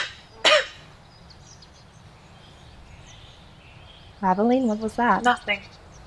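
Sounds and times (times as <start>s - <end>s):
quiet hiss: 0.0s - 6.0s
sharp cough: 0.4s - 0.8s
speech: 4.2s - 5.8s.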